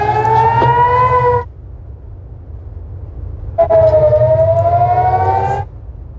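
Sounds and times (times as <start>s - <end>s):
air raid sirens wailing: 0.0s - 1.5s, 3.6s - 5.7s
steady low rumble: 0.0s - 6.1s.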